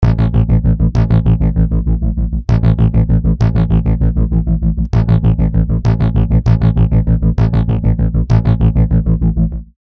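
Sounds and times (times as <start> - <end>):
rhythmic bass pedal blends: 0.0 - 9.8.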